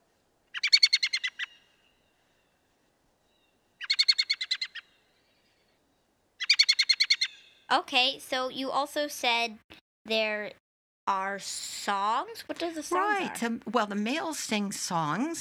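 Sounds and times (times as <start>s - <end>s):
bird alarm call: 0.5s - 2.2s, 3.3s - 5.0s, 6.4s - 7.7s
speech: 7.7s - 15.4s.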